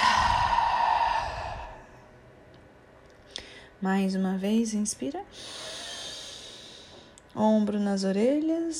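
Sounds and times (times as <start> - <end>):
deep exhale releasing raised shoulders in a breathing exercise: 0.0 - 2.1, 5.4 - 7.1
speech: 3.8 - 5.7, 7.4 - 8.7.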